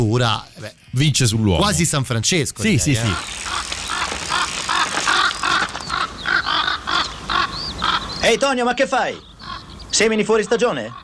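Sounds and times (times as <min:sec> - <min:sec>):
speech: 0:00.0 - 0:03.8, 0:08.3 - 0:09.3, 0:09.9 - 0:11.0
crows cawing: 0:03.0 - 0:09.8, 0:10.4 - 0:11.0.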